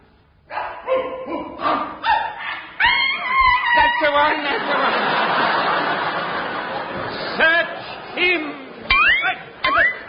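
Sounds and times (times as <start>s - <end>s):
long-haired sheepdogs barking: 0.5s - 3.4s
sheepdog yelping sharply: 0.5s - 4.1s
laughter: 3.7s - 10.0s.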